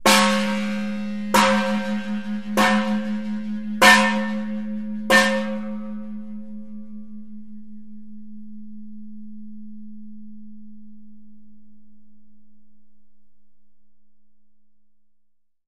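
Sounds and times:
Khmer temple bell in bell tower: 0.0 - 11.5.

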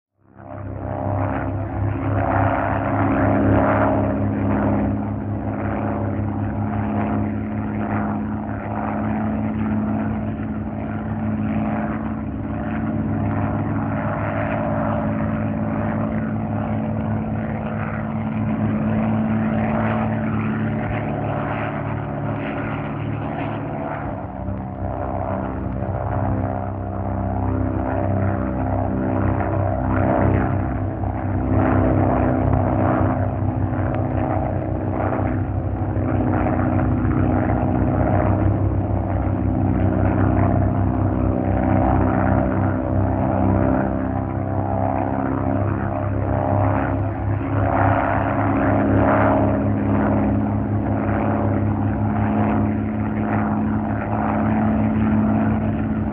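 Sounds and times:
single propeller WW2 fighter plane in steady flight: 0.1 - 56.1.

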